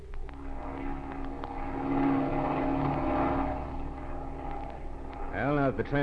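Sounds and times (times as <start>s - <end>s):
propeller airplane engine droning as the plane circles in flight: 0.0s - 6.0s
speech: 5.8s - 6.0s.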